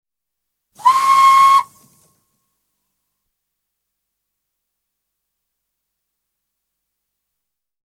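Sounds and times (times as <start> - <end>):
19th century 31ft steam launch hooter blast: 0.8 - 1.8.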